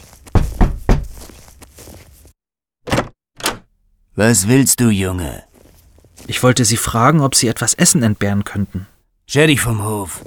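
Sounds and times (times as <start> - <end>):
firm knocking on a house door: 0.3 - 1.2
speech: 4.2 - 5.5, 6.3 - 10.2.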